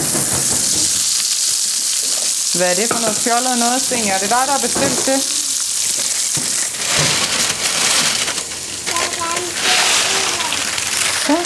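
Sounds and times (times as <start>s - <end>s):
steady rain falling: 0.0s - 11.4s
speech: 2.6s - 5.4s.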